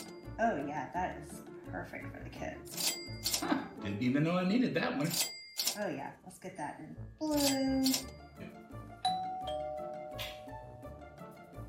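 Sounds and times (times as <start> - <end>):
doorbell chime: 0.0 - 0.4, 2.8 - 3.4, 7.4 - 11.0
rhythmic music: 0.0 - 11.6
speech: 0.4 - 9.0.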